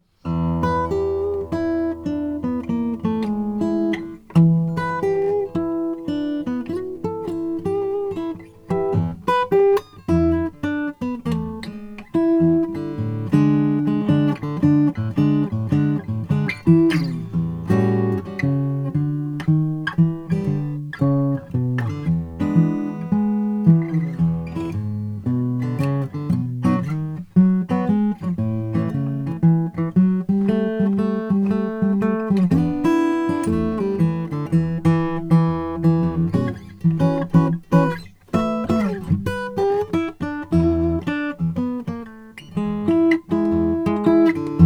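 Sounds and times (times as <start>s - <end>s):
custom mahogany acoustic guitar: 0.0s - 44.6s.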